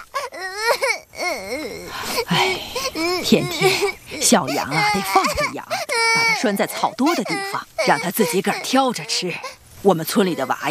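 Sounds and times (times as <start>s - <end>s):
child crying: 0.0s - 9.5s
speech: 1.4s - 10.6s.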